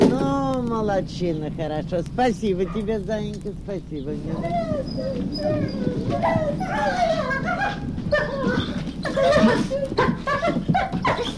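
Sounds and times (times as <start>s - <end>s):
laughter: 0.1s - 11.3s
speech: 1.0s - 11.3s
chorus of wolves howling and yipping: 2.5s - 3.3s, 4.0s - 11.3s.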